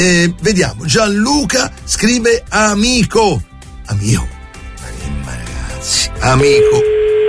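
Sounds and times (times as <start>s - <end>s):
speech: 0.0s - 4.4s, 5.3s - 7.0s
telephone ringing tone of an outgoing call: 6.4s - 7.2s.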